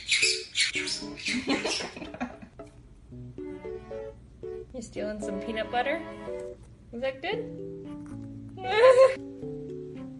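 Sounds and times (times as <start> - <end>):
bird screaming from the top of a tower: 0.0 - 2.0
speech: 1.0 - 2.1, 5.0 - 8.0, 8.6 - 9.6.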